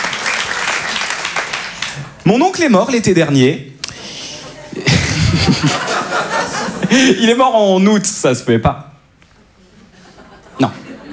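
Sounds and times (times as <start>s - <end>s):
crowd clapping: 0.0s - 2.7s
speech: 2.3s - 3.7s, 5.6s - 5.8s, 6.9s - 8.9s, 10.6s - 10.8s
laughter: 4.1s - 7.4s, 9.5s - 11.1s.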